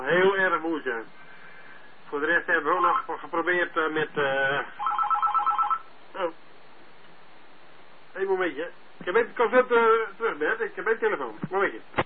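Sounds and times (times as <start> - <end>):
speech: 0.0 - 1.3, 2.1 - 4.9, 6.2 - 6.4, 8.2 - 12.0
telephone ringing with a rapid trill: 4.8 - 5.9.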